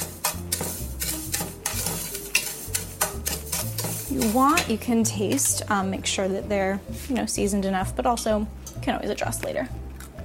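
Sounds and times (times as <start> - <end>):
oil-toasted breadcrumbs stirred in a pan: 0.0 - 6.2, 6.8 - 7.7
soft constant sizzle in a pan: 0.0 - 9.6
speech: 4.2 - 9.8.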